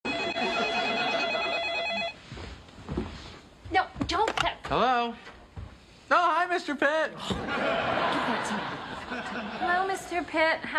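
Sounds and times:
telephone ringing with a trilling bell in an apartment: 0.1 - 2.2
faint noise: 0.1 - 10.7
laughter: 0.3 - 1.6, 7.2 - 10.3
speech: 4.7 - 5.4, 6.1 - 10.7.

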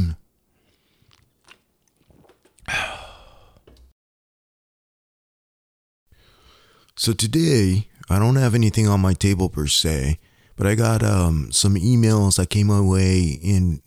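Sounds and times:
faint sipping and swallowing of a drink: 0.6 - 3.6
loud breathy exhale of satisfaction: 2.7 - 3.6, 6.2 - 7.0, 10.2 - 10.6
speech: 7.0 - 13.8.

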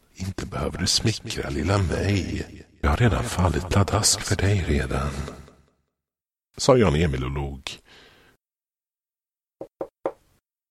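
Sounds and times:
speech: 0.2 - 5.4, 6.6 - 7.7
firm knocking on a door: 9.6 - 10.2.

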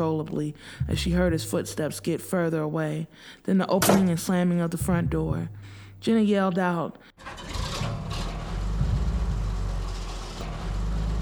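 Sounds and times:
speech: 0.0 - 7.5
truck engine roaring: 7.2 - 11.2.

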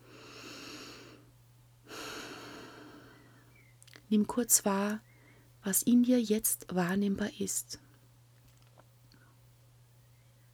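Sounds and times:
person taking a small but deep breath: 0.0 - 1.3, 1.9 - 3.6
low steady hum: 0.0 - 10.5
speech: 4.1 - 7.8.

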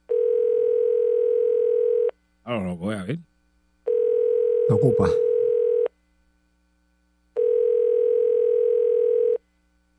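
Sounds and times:
telephone ringback tone while placing a call: 0.1 - 2.1, 3.9 - 5.9, 7.4 - 9.4
speech: 2.5 - 3.3, 4.7 - 5.3.

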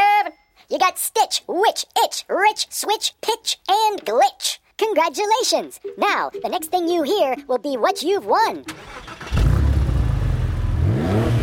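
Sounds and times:
speech: 0.7 - 9.3
Porsche sports car engine revving: 9.2 - 11.4.

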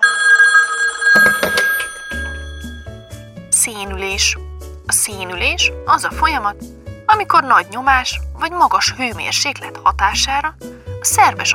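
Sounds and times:
smartphone ringing with an electronic melody: 0.0 - 3.2
speech: 3.7 - 11.5.

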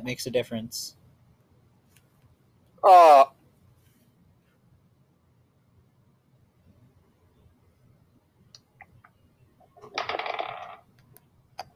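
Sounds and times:
speech: 0.0 - 1.0, 2.8 - 3.4
dice clattering: 9.6 - 11.0.

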